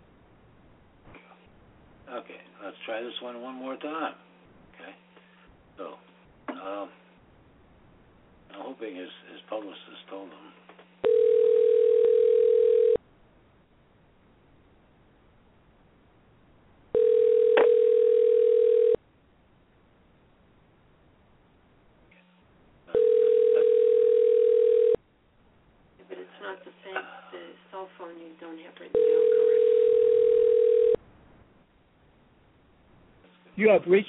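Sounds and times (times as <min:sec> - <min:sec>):
speech: 0:02.1 - 0:05.0, 0:05.8 - 0:07.0, 0:08.8 - 0:10.6, 0:33.6 - 0:34.0
telephone dial tone on a phone line: 0:11.0 - 0:13.0, 0:16.9 - 0:19.0, 0:22.9 - 0:25.0, 0:29.0 - 0:31.0
voice talking on a phone line: 0:23.0 - 0:24.1, 0:28.9 - 0:29.9.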